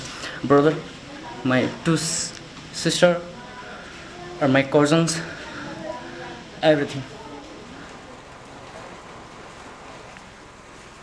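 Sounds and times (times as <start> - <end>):
steady rain: 0.0 - 11.0
speech: 0.4 - 3.3, 4.4 - 5.4, 6.6 - 7.2.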